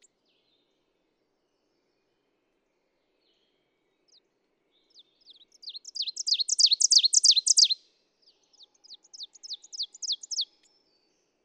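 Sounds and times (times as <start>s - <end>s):
ovenbird singing: 4.9s - 7.8s, 8.4s - 10.7s.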